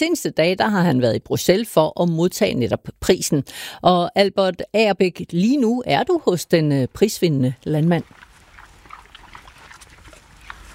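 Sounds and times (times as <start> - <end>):
speech: 0.0 - 8.2
pigs grunting and snuffling on grass on a farm: 7.6 - 10.7.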